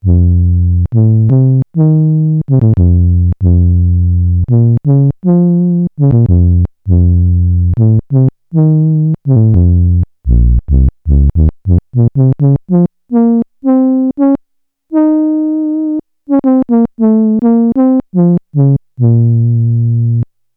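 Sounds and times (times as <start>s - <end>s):
Roland SH-101 synthesizer horn factory patch: 0.0s - 20.3s.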